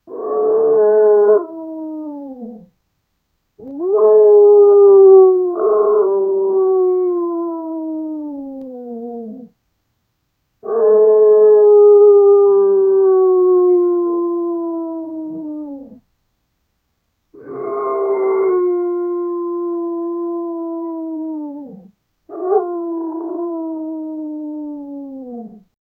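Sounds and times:
very small dog howling: 0.1 - 2.7, 3.6 - 9.5, 10.6 - 16.0, 17.4 - 25.6.

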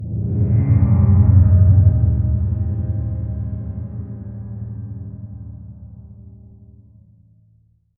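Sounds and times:
deep low abstract drone: 0.0 - 7.2.

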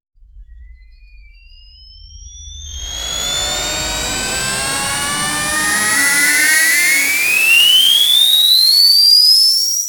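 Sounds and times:
anime charging sound effect: 2.0 - 9.7.

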